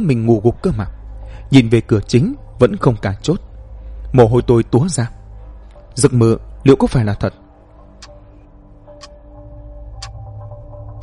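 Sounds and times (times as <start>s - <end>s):
speech: 0.0s - 3.5s, 4.1s - 5.2s, 6.0s - 7.4s
low steady hum: 0.0s - 11.0s
clock ticking: 10.0s - 10.2s.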